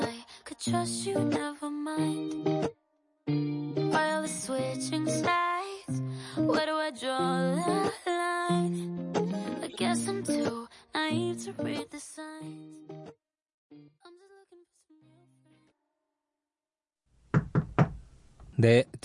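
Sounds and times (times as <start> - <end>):
music: 0.0 - 15.7
speech: 0.6 - 3.4, 4.5 - 8.0, 18.6 - 19.0
sharp raps on a wooden door: 17.3 - 18.0.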